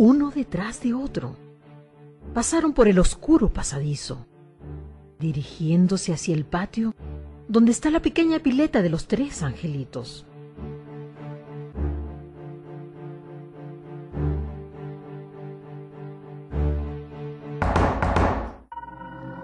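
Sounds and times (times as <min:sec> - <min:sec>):
speech: 0:00.0 - 0:01.4, 0:02.2 - 0:10.7
heavy knocks on a door in a dark passageway at night: 0:17.6 - 0:18.6.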